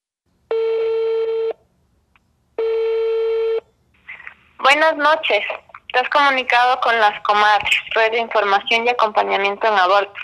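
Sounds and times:
buzzy telephone ringing tones on a placed call: 0:00.5 - 0:01.6, 0:02.6 - 0:03.7
speech: 0:04.7 - 0:10.2.

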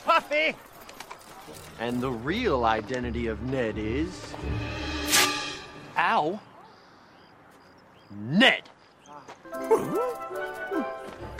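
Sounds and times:
speech: 0:00.2 - 0:00.7, 0:01.5 - 0:05.0, 0:06.0 - 0:06.5, 0:08.1 - 0:11.2
voice imitating a dog with drawn-out whiny woofs: 0:09.6 - 0:10.9.

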